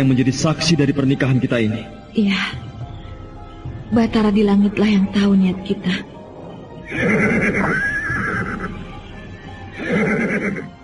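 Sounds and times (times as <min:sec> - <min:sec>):
speech: 0:00.0 - 0:02.6, 0:03.9 - 0:06.1, 0:06.9 - 0:07.9
horse neighing: 0:06.8 - 0:08.9, 0:09.7 - 0:10.8.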